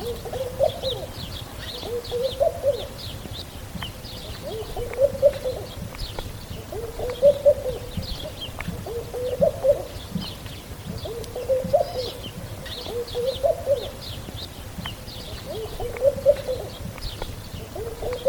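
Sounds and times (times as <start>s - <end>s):
bird calling with a low hooting coo: 0.0s - 3.1s, 4.3s - 5.9s, 6.5s - 14.1s, 15.3s - 16.9s, 17.5s - 18.2s.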